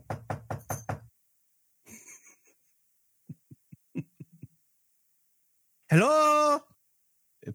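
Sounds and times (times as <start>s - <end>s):
loud knocking on a door: 0.0s - 1.1s
speech: 5.9s - 6.3s.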